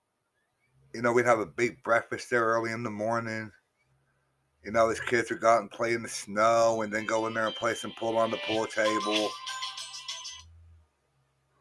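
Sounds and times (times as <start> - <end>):
speech: 1.0 - 3.6, 4.6 - 9.6
phone ringtone beeping: 6.9 - 10.5.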